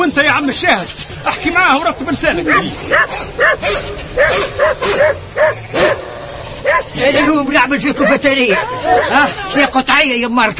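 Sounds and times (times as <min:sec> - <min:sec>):
low rumble: 0:00.0 - 0:10.5
speech: 0:00.1 - 0:06.0, 0:06.7 - 0:10.5
dog barking: 0:02.5 - 0:09.3.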